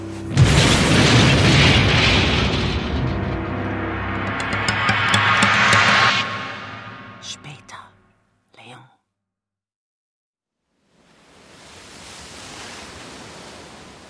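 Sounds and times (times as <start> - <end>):
explosion: 0.3 - 7.4.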